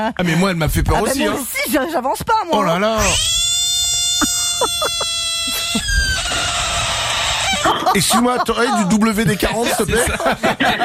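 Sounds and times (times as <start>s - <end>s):
speech: 0.0s - 3.4s, 4.2s - 5.9s, 7.6s - 10.8s
frog distress scream: 3.0s - 7.9s
laughter: 4.2s - 6.2s, 7.5s - 10.8s.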